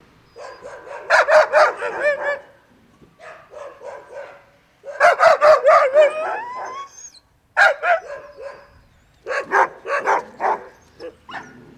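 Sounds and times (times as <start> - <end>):
dog barking outdoors: 0.4 - 2.6, 3.2 - 6.9, 7.6 - 11.6
dog howling outdoors: 5.5 - 7.2.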